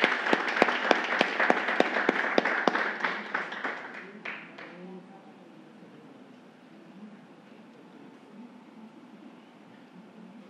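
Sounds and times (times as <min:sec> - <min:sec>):
sizable crowd applauding at an honorary ceremony: 0:00.0 - 0:04.8.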